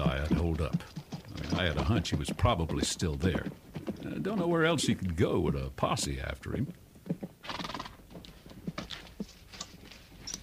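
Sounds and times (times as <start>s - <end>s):
horse hooves clip-clopping on hard ground: 0.0s - 10.4s
speech: 0.3s - 3.6s, 4.2s - 6.8s
horse whinnying: 7.4s - 8.1s.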